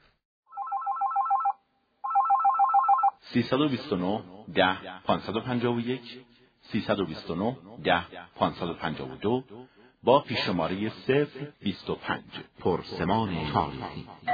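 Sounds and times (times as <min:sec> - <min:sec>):
telephone ringing for an incoming call-in question: 0:00.5 - 0:03.2
speech: 0:03.3 - 0:14.3.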